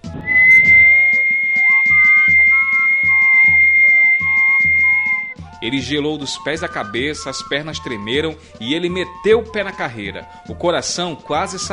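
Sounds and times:
second sliding tone: 0.0s - 5.3s
long steady high piercing whistle near a main parish church: 0.0s - 5.4s
speech: 5.6s - 11.7s.

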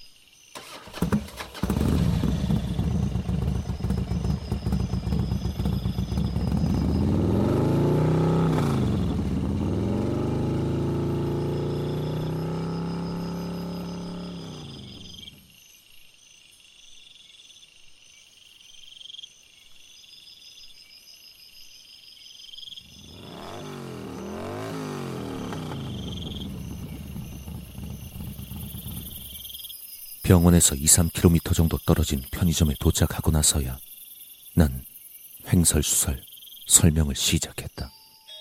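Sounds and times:
crickets chirping in the night: 0.0s - 38.3s
motorcycle engine sputtering to life, revving and pulling away: 0.6s - 15.5s, 22.8s - 29.6s
speech: 30.3s - 33.9s, 34.6s - 34.9s, 35.5s - 37.8s.

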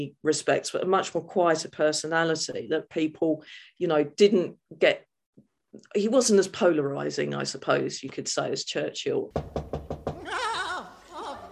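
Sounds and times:
speech: 0.0s - 5.1s, 5.8s - 10.0s
loud knocking on a door: 9.3s - 10.2s
laughter: 10.2s - 11.5s.

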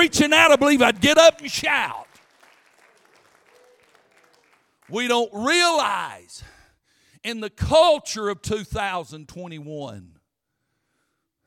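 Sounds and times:
speech: 0.0s - 2.1s, 4.9s - 6.5s, 7.2s - 10.2s
congregation clapping hands in applause: 0.0s - 5.6s.

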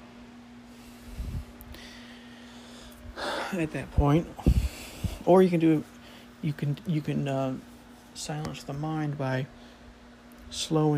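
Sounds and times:
faint steady electrical hum: 0.0s - 10.9s
deep airy breaths for a breathing exercise: 0.7s - 3.7s, 4.4s - 5.3s
speech: 3.5s - 4.6s, 5.3s - 9.6s, 10.5s - 10.9s.

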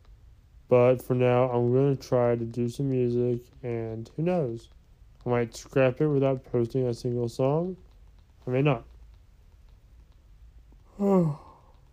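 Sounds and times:
quiet room noise: 0.0s - 11.9s
speech: 0.7s - 7.8s, 8.4s - 8.9s, 11.0s - 11.4s
person yawning: 10.9s - 11.7s.

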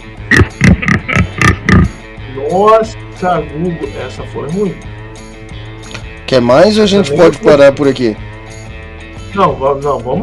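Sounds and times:
pig oinking: 0.3s - 1.9s
speech: 2.5s - 5.0s, 6.3s - 8.3s, 9.3s - 10.2s.

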